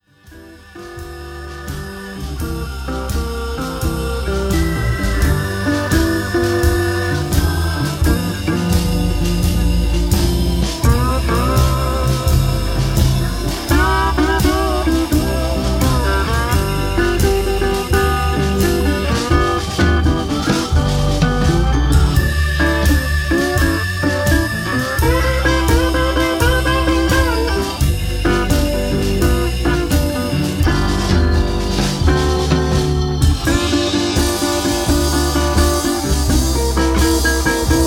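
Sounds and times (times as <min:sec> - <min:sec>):
Delta blues in G: 0:00.0 - 0:37.8.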